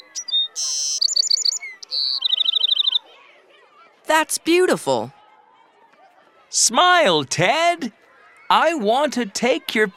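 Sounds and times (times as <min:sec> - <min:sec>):
small bird singing with buzzy notes and trills: 0:00.0 - 0:03.1
speech: 0:04.1 - 0:05.2, 0:06.6 - 0:09.9.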